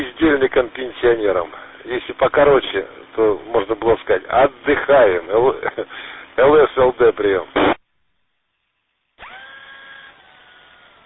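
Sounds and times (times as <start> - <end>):
speech: 0.0 - 7.7
hand drill whirring at a dacha transmitted over the radio: 9.2 - 11.0.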